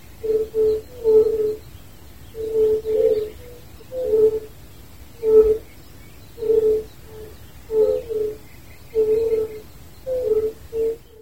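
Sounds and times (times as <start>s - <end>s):
faint background noise: 0.0s - 11.2s
fire-bellied toad soft mellow hooting calls: 0.2s - 1.6s, 2.3s - 4.5s, 5.2s - 5.8s, 6.4s - 11.2s.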